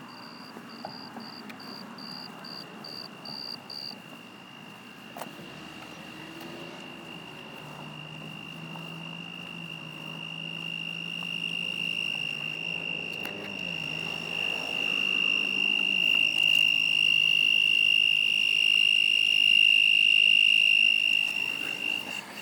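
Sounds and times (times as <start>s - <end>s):
faint low outdoor hum: 0.0s - 20.4s
insect or frog calling with a shrill buzz: 5.4s - 22.3s.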